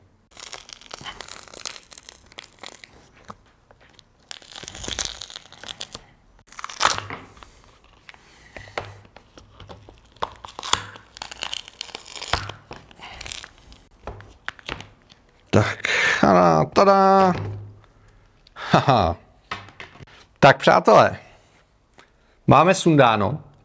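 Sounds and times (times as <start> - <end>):
adhesive tape being peeled off a keyboard with a thread: 0.3 - 9.1, 9.8 - 15.6
speech: 16.3 - 17.5, 18.8 - 19.2, 20.4 - 21.2, 22.5 - 23.5.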